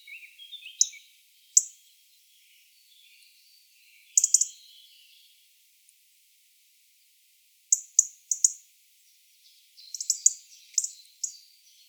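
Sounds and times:
European robin chirping: 0.0s - 1.9s, 2.8s - 5.2s, 7.7s - 8.6s, 9.8s - 11.8s.

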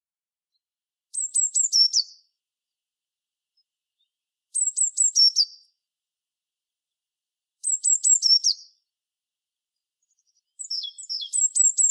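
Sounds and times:
Eurasian blue tit Cyanistes caeruleus repeating a song phrase: 1.1s - 2.4s, 3.6s - 5.8s, 7.6s - 8.9s, 9.7s - 11.9s.

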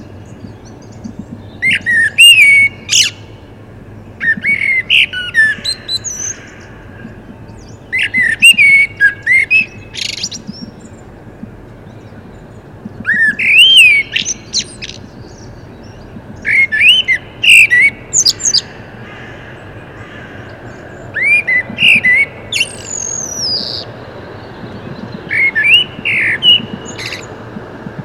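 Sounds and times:
common blackbird Turdus merula singing: 0.0s - 27.7s.

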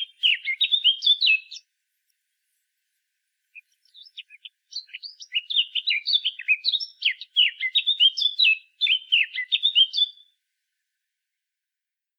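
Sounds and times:
Eurasian blackcap song, Sylvia atricapilla: 0.0s - 2.6s, 3.4s - 10.4s.

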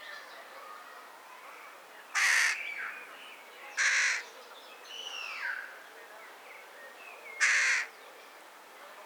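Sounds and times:
carrion crow Corvus corone giving harsh hoarse caws: 2.2s - 2.6s, 3.8s - 4.2s, 7.4s - 7.9s.

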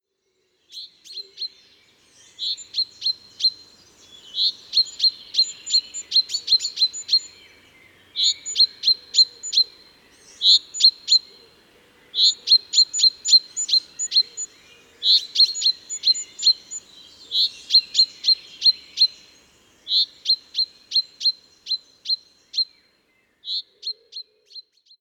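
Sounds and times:
common chaffinch Fringilla coelebs calling: 2.4s - 7.4s, 8.1s - 11.4s, 12.1s - 22.7s.

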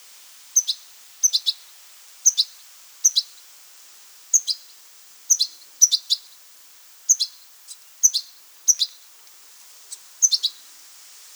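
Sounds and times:
faint background hiss: 0.0s - 11.3s
European goldfinch twittering calls, Carduelis carduelis: 0.6s - 1.6s, 2.2s - 3.3s, 7.1s - 7.4s, 8.0s - 9.0s, 10.2s - 10.6s.

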